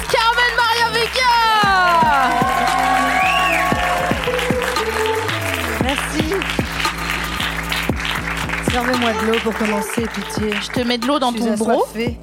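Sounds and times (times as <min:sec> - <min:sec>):
large crowd applauding: 0:00.0 - 0:11.6
crowd cheering, whooping and whistling: 0:01.6 - 0:05.8
speech: 0:09.0 - 0:12.2.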